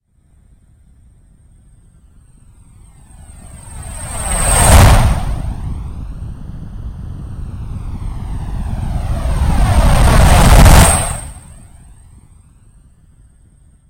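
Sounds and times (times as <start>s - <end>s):
jet: 0.1s - 13.8s.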